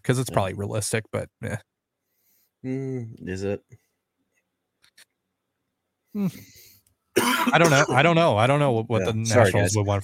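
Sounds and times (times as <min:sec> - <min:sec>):
speech: 0:00.0 - 0:01.7, 0:02.6 - 0:03.8, 0:06.1 - 0:10.0
person coughing harshly: 0:07.2 - 0:08.1.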